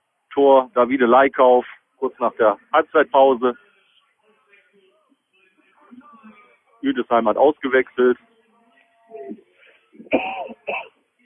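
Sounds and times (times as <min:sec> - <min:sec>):
speech: 0:00.4 - 0:03.6, 0:06.8 - 0:08.3
sharp coughs: 0:10.0 - 0:10.9.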